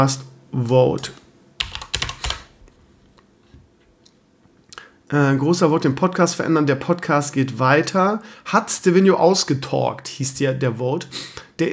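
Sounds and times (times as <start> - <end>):
speech: 0.0 - 1.2, 5.1 - 11.7
loud computer keyboard typing: 1.6 - 2.5.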